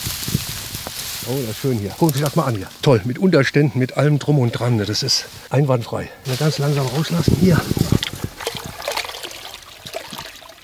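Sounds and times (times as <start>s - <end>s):
speech: 1.3s - 8.0s
stream babbling: 2.7s - 10.6s
bucket of water with fish poured into a stream: 6.3s - 10.6s.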